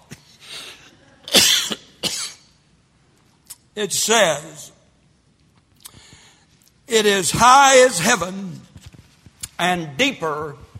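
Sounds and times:
person coughing: 0.8s - 2.5s
speech: 3.8s - 4.7s, 6.9s - 8.7s, 9.6s - 10.6s.

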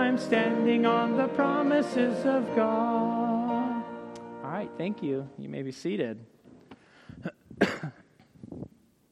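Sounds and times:
speech: 0.2s - 3.1s, 4.7s - 6.4s
person coughing roughly: 7.1s - 8.3s
throat clearing: 7.2s - 8.3s.

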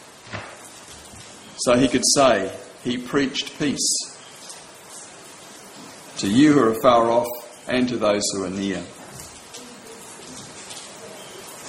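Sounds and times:
steady rain falling outside: 0.0s - 11.6s
speech: 1.6s - 4.1s, 6.2s - 9.0s.

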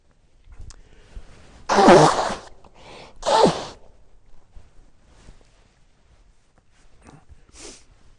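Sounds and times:
person coughing harshly in a coughing fit: 1.7s - 2.5s.

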